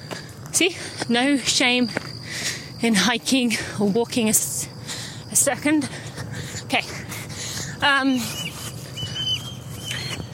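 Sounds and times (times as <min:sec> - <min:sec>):
speech: 0:00.6 - 0:04.7, 0:05.3 - 0:06.1, 0:06.7 - 0:07.0, 0:07.8 - 0:08.4
bird squawking outdoors: 0:08.1 - 0:10.3.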